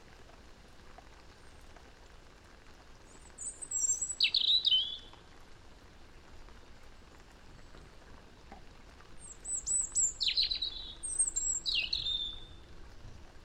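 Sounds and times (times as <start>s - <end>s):
soft steady hiss: 0.0s - 13.4s
European robin Erithacus rubecula singing tinkling phrases: 3.1s - 5.1s, 9.2s - 12.6s.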